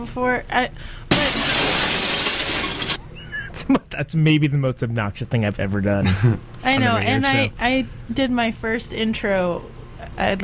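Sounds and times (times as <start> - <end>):
speech: 0.0 - 1.3, 3.7 - 10.4
glass shattering: 1.1 - 3.0.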